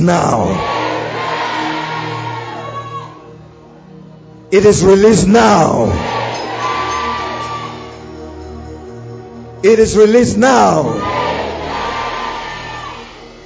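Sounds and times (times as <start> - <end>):
speech: 0.0 - 0.8, 4.5 - 6.2, 9.6 - 11.2
audience shouting and whooping: 0.4 - 3.3, 5.9 - 8.0, 10.8 - 13.4.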